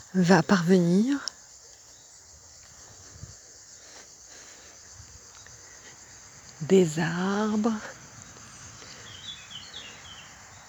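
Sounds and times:
birdsong: 0.0 - 10.6
insects: 0.0 - 10.6
quiet outdoor hiss: 0.0 - 10.6
speech: 0.1 - 1.3, 6.7 - 8.0.

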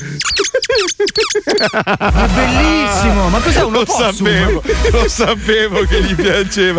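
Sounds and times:
squeaky opossum dog toy being squeezed: 0.0 - 4.4
laughter: 0.0 - 6.7
speech: 1.2 - 6.7.

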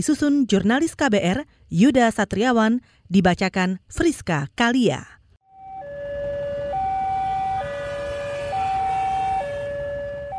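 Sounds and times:
speech: 0.0 - 5.2
low rumble of traffic: 5.5 - 10.3
railway level crossing warning siren wailing: 5.5 - 10.3.

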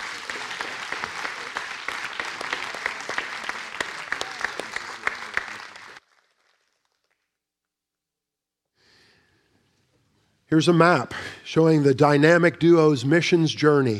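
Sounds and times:
room full of people clapping: 0.0 - 7.3
speech: 10.5 - 13.9.

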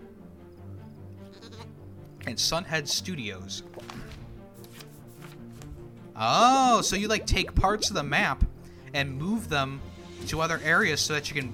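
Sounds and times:
sheep bleating in a video game trailer: 1.2 - 1.8
speech: 2.3 - 4.0, 6.2 - 11.5.

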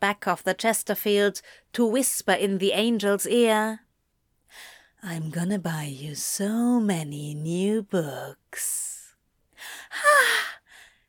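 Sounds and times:
speech: 0.0 - 3.8, 4.5 - 8.9, 9.6 - 10.5
person giving a sharp breathy gasp: 9.6 - 11.0.

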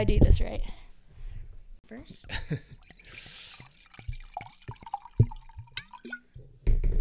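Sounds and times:
speech: 0.0 - 0.8, 1.9 - 3.4
wine glugging from a bottle into a glass: 2.6 - 6.4.

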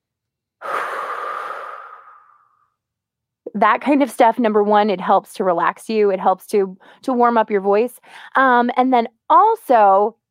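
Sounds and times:
deep breath blown out slowly as a relaxation and voice warm-up exercise: 0.6 - 2.6
speech: 3.5 - 10.2.

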